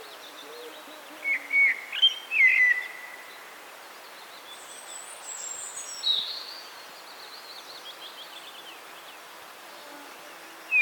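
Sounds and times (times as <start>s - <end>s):
common blackbird Turdus merula singing fluty whistled phrases: 0.0s - 9.9s.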